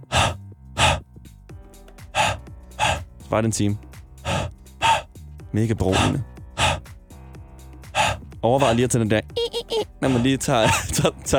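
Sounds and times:
person exhaling onto a CD to fog it for cleaning: 0.0s - 1.1s, 2.0s - 3.2s, 4.2s - 5.2s, 5.9s - 7.0s, 7.8s - 8.8s, 10.0s - 10.8s
speech: 3.3s - 3.9s, 5.5s - 6.3s, 8.4s - 9.4s, 10.0s - 11.3s
laughter: 9.4s - 11.3s.

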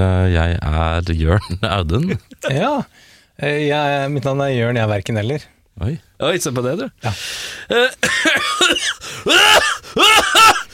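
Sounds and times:
speech: 0.3s - 10.7s
person coughing: 7.7s - 10.7s.

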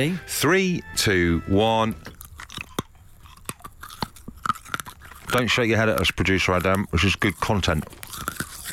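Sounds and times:
speech: 0.0s - 2.2s, 5.3s - 8.3s
hard mint being crunched while eaten: 2.0s - 8.7s.

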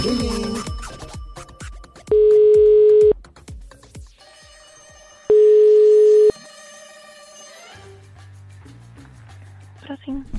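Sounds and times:
speech: 0.0s - 0.5s
telephone ringback tone while dialing a call: 2.1s - 3.2s, 5.3s - 6.3s.

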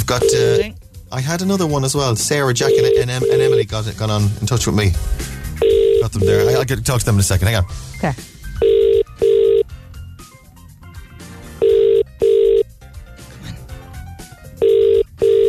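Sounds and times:
phone ringback tone of paired electronic rings heard from the caller's end: 0.0s - 0.8s, 2.6s - 3.7s, 5.6s - 6.7s, 8.6s - 9.7s, 11.6s - 12.7s, 14.6s - 15.4s
speech: 0.1s - 5.3s, 6.0s - 8.7s.

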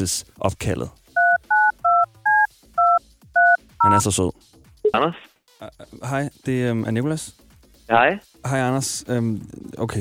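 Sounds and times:
speech: 0.0s - 1.0s, 3.8s - 9.9s
telephone keypad dual-pitch dialing beeps: 1.2s - 4.0s.

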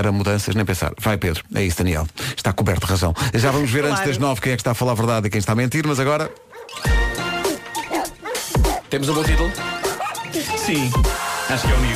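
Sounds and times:
speech: 0.0s - 7.0s, 8.9s - 11.9s
dog barking loudly: 6.2s - 6.8s, 7.8s - 8.9s, 9.9s - 10.3s
dog growling and yelping: 7.6s - 8.9s.

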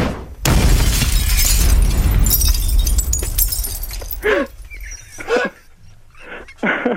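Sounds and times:
Molotov cocktail petrol bottle shattering: 0.5s - 5.0s.

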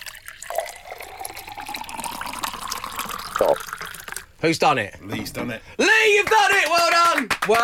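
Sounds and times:
juice pouring into a glass: 0.0s - 4.4s
speech: 3.4s - 3.7s, 4.4s - 7.6s.

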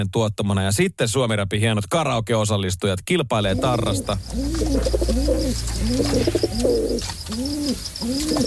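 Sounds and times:
speech: 0.0s - 8.4s
steady low hum: 3.4s - 7.4s
pigeons cooing: 3.4s - 8.4s.

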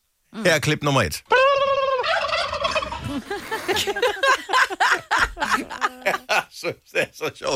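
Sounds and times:
speech: 0.4s - 1.3s, 3.1s - 7.5s
turkeys gobbling: 1.3s - 3.2s
laughter: 2.6s - 7.1s.

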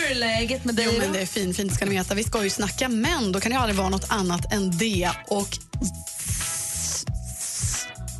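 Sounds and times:
speech: 0.1s - 6.1s
steady loud hiss and crackle: 6.1s - 8.0s.

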